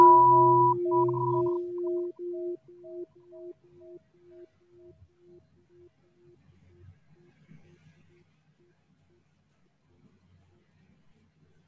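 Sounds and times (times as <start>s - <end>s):
mindfulness bell ringing with a deep sustained tone: 0.0s - 2.5s.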